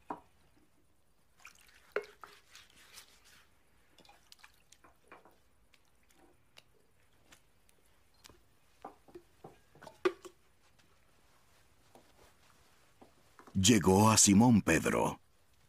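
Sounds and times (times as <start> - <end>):
water splashing and dripping while washing feet: 1.2 - 7.6
water poured into a basin: 1.4 - 5.0
speech: 13.6 - 15.2.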